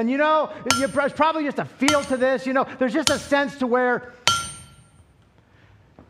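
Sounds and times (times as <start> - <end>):
speech: 0.0 - 4.2
hammer striking hot metal on an anvil: 0.7 - 3.6, 4.3 - 5.1.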